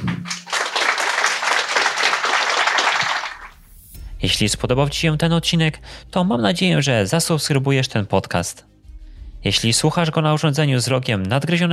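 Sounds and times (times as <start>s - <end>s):
audience applause for guests after a discussion: 0.0s - 3.6s
speech: 4.2s - 8.7s, 9.4s - 11.7s.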